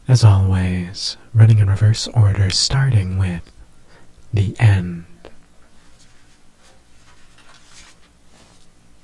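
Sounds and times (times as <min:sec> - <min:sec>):
speech: 0:00.1 - 0:03.6, 0:04.3 - 0:05.1
paper rustling and scraping from handling: 0:05.9 - 0:08.8.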